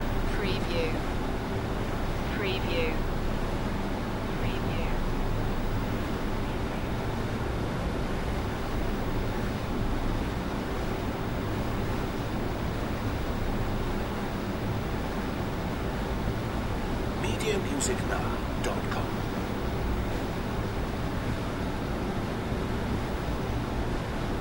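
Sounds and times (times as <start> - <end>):
multiple computer fans whirring in a server room: 0.0 - 24.3.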